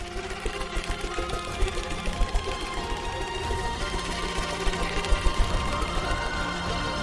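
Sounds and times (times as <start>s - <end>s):
mechanical whirring of a helicopter turtle flying away: 0.0s - 6.9s.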